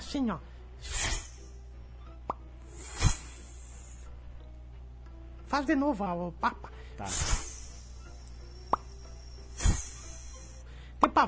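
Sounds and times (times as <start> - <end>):
speech: 0.1 - 1.0, 5.5 - 7.4
voice softly imitating a noiseless firework: 0.8 - 1.5, 2.7 - 3.7, 7.0 - 8.0, 9.5 - 10.5.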